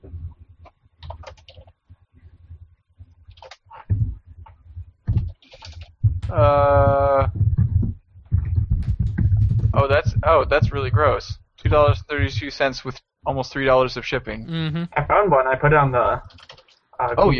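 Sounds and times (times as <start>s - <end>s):
low hum: 0.0s - 17.3s
loud typing on a computer keyboard picked up by a webcam microphone: 1.0s - 1.8s, 3.3s - 3.7s, 5.1s - 6.5s, 16.2s - 16.8s
speech: 10.5s - 17.3s.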